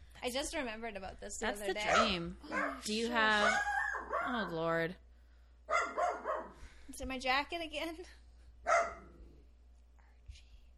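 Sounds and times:
low hum: 0.0s - 10.7s
speech: 0.2s - 5.0s, 6.9s - 8.9s
pet dog barking: 1.8s - 4.5s, 5.7s - 6.6s, 8.6s - 9.2s.

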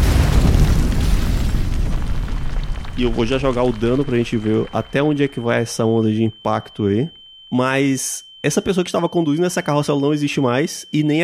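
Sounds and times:
massive deep explosion: 0.0s - 5.4s
speech: 3.0s - 11.2s.

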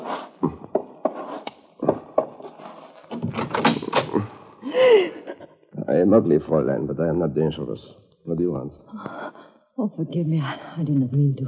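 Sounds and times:
door creaking open: 1.8s - 4.4s
wooden knocks and rattles from a door lock: 1.9s - 4.3s
speech: 6.0s - 9.2s, 9.8s - 11.4s.

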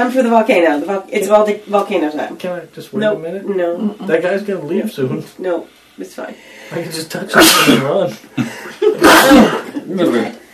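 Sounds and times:
speech: 0.0s - 10.4s
person sneezing: 7.4s - 8.0s, 9.0s - 10.3s.

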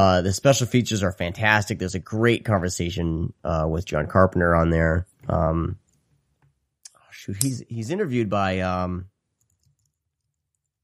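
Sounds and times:
speech: 0.0s - 5.8s, 7.2s - 9.1s
keyboard typing: 9.4s - 10.8s.

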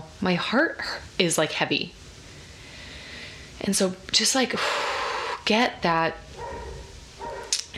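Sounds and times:
speech: 0.2s - 2.0s, 3.6s - 4.9s, 5.5s - 6.2s
dogs barking outdoors: 6.3s - 7.6s.

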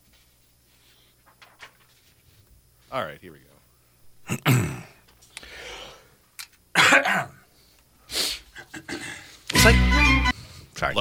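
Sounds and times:
speech: 2.9s - 3.6s
person coughing: 4.3s - 5.0s, 6.8s - 7.4s
short raspy breaths: 4.9s - 6.3s, 7.4s - 9.5s, 10.3s - 10.8s.

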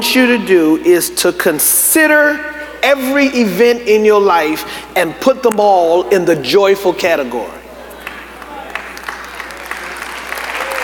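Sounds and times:
speech: 0.0s - 7.6s
audience clapping in a church: 8.0s - 10.8s.

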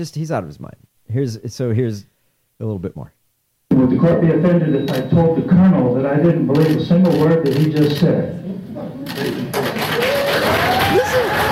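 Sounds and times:
speech: 0.0s - 3.2s, 3.8s - 8.4s
crowd applause in a played recording: 9.5s - 11.4s
scattered cheers and whistles from a crowd: 9.9s - 11.4s.

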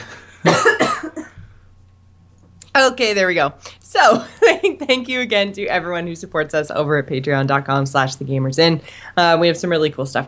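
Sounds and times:
person coughing: 0.0s - 1.4s
speech: 2.8s - 10.2s.

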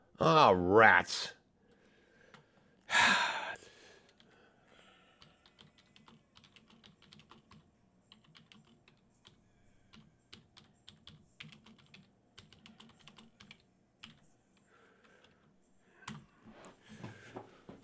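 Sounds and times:
low hum: 0.0s - 17.8s
speech: 0.2s - 1.4s
typing on a computer keyboard: 4.0s - 16.3s.

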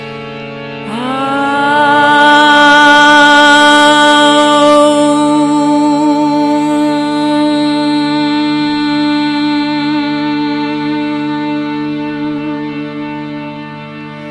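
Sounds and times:
voice singing vowels ah, oo, mm in one breath: 0.8s - 12.9s.

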